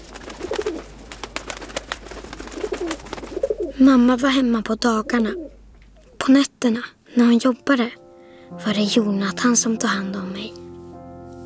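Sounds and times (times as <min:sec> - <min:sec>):
many pigeons cooing outside a window: 0:00.0 - 0:06.2
speech: 0:03.8 - 0:05.4, 0:06.3 - 0:10.6.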